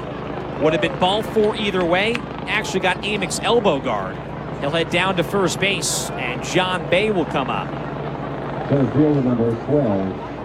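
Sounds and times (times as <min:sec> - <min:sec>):
helicopter drone flying over a baseball field during an evening game: 0:00.0 - 0:10.4
speech: 0:00.6 - 0:07.9, 0:08.7 - 0:10.3.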